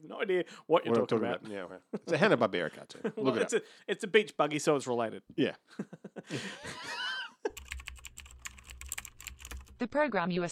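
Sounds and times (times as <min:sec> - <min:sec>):
speech: 0:00.2 - 0:07.0, 0:09.8 - 0:10.4
laughter: 0:01.9 - 0:03.6, 0:05.7 - 0:07.6
rapid computer keyboard typing: 0:07.5 - 0:09.8.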